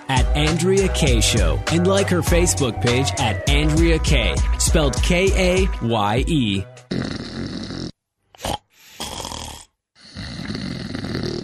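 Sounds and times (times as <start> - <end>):
speech: 0.1 - 7.2
person snoring loudly: 6.8 - 11.4.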